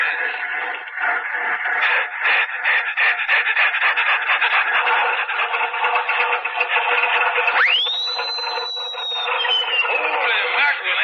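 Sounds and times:
old car engine cranking and sputtering: 0:00.0 - 0:11.0
high whine: 0:07.6 - 0:10.6.

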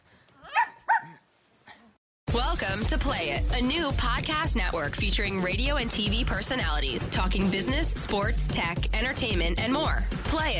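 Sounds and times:
dog barking: 0:00.4 - 0:01.2
speech: 0:02.6 - 0:10.5.

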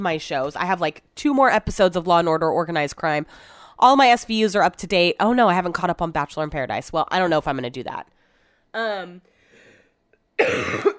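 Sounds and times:
speech: 0:00.0 - 0:08.1, 0:08.7 - 0:09.3, 0:10.4 - 0:10.9
loud harsh cough: 0:10.4 - 0:10.9.

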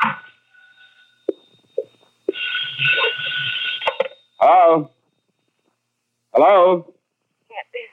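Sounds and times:
telephone ringing with a shrill buzzing tone: 0:00.0 - 0:05.8
speech: 0:04.4 - 0:05.0, 0:06.4 - 0:06.9.

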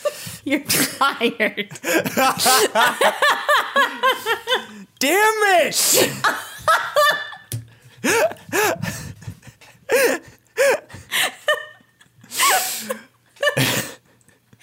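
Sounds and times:
speech: 0:00.4 - 0:06.9, 0:08.0 - 0:09.0
laughter: 0:00.6 - 0:04.8, 0:06.1 - 0:09.6, 0:10.6 - 0:14.0
person sneezing loudly: 0:05.8 - 0:06.2.

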